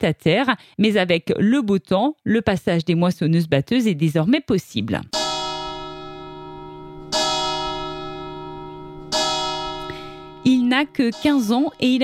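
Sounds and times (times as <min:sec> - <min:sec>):
speech: 0:00.0 - 0:05.2, 0:10.8 - 0:12.0
church bell of nearly 25 kilos clanging: 0:05.2 - 0:12.0.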